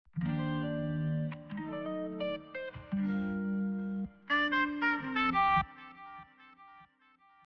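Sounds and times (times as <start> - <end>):
guitar melody: 0.2 - 6.8
saxophone: 2.9 - 7.2.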